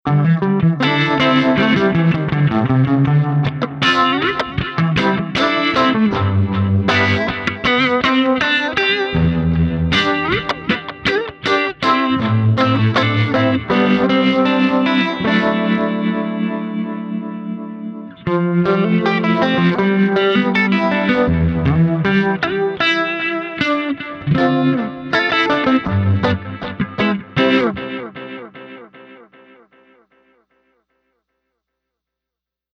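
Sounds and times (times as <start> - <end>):
Ibanez S470 through Electro Harmonix Ring Thing and Roland JC120: 0.1 - 30.2.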